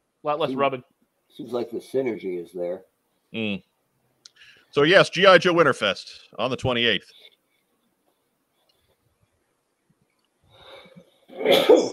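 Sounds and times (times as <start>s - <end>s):
speech: 0.2s - 3.7s, 4.4s - 7.3s, 11.4s - 11.9s
person sneezing: 11.3s - 11.9s.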